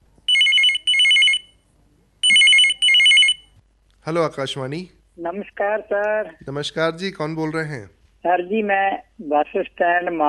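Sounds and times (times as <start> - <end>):
telephone ringing for incoming call to a radio phone-in programme: 0.3 - 1.6, 2.2 - 3.5
speech: 4.0 - 10.2.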